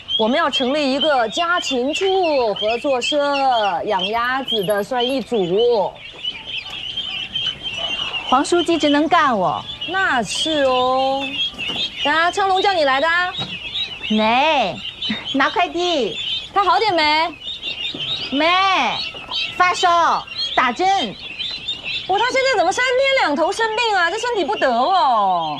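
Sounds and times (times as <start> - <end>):
crowd of many ducklings peeping: 0.0 - 25.5.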